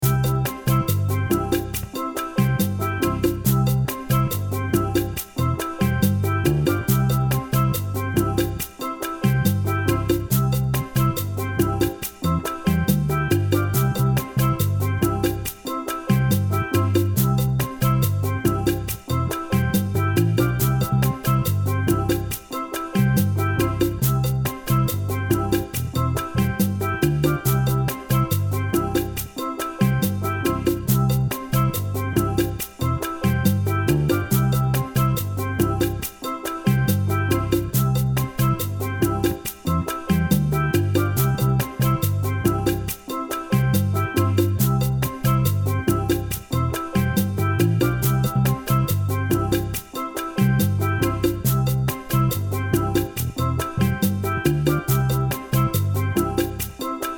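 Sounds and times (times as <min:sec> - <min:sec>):
one chord calypso backing track in C: 0:00.0 - 0:57.1.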